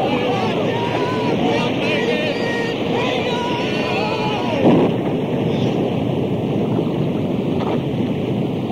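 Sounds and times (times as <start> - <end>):
voices calling out: 0.0 - 6.0
churning water: 0.0 - 8.7
storm wave crashing against a boat: 0.0 - 8.7
storm wind roaring: 0.0 - 8.7.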